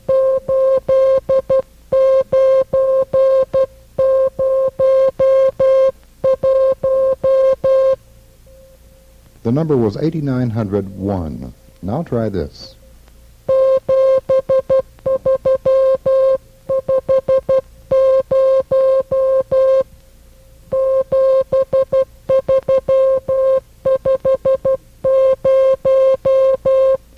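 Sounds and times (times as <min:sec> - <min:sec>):
Morse code telegraphy signal tone keyed into dots and dashes: 0:00.0 - 0:08.0, 0:13.5 - 0:19.9, 0:20.7 - 0:27.0
speech: 0:09.5 - 0:12.7.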